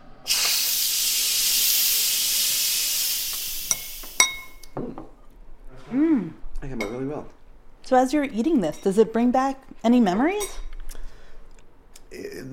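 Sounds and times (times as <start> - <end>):
steam rushing from a pressure cooker valve: 0.0 - 4.6
light clinks of metal and glass: 3.7 - 4.6
speech: 5.9 - 10.6.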